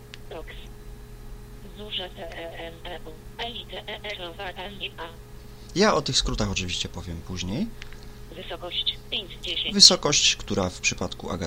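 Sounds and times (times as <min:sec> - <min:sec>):
low electronic hum: 0:00.0 - 0:11.4
screen reader synthetic voice spelling letters: 0:00.3 - 0:00.7, 0:01.7 - 0:05.2, 0:08.3 - 0:09.9
speech: 0:01.8 - 0:11.4.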